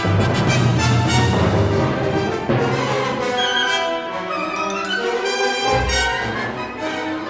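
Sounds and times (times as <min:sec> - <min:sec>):
battle sounds: 0:00.2 - 0:07.2.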